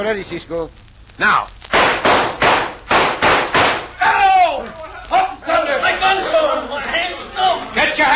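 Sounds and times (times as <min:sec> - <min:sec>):
speech: 0:00.0 - 0:01.6
gunshots in a western shootout: 0:01.7 - 0:03.9
people shouting: 0:03.6 - 0:08.1.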